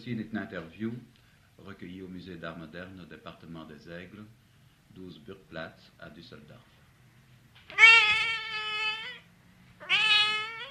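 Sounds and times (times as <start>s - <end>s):
speech: 0.0s - 6.8s
cat meowing long drawn-out meows: 7.7s - 10.6s.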